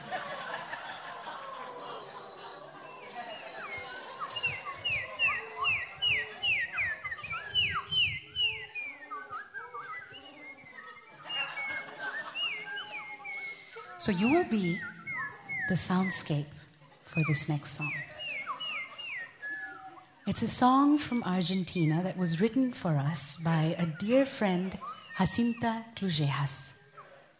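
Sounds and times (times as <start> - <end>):
scattered laughter: 0.0 - 15.7, 17.8 - 20.2
crowd of people whistling and chirping in imitation of birdsong: 0.0 - 27.2
speech: 14.0 - 14.9, 15.7 - 18.1, 20.3 - 26.8.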